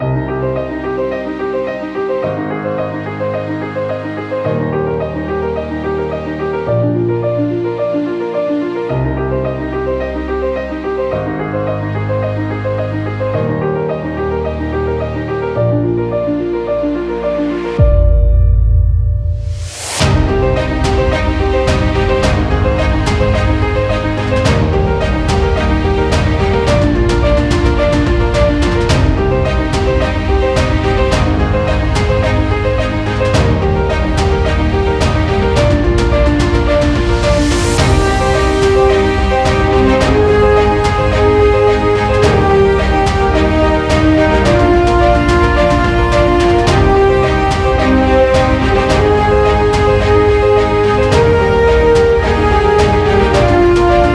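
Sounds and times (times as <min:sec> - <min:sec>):
inspiring epic orchestral trailer music: 0:00.0 - 0:54.1.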